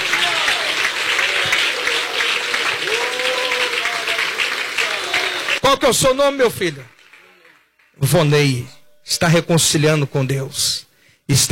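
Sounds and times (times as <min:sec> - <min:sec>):
cheers: 0:00.0 - 0:05.7
church audience applauding during a service: 0:00.0 - 0:08.3
speech: 0:05.7 - 0:06.9, 0:08.0 - 0:11.4.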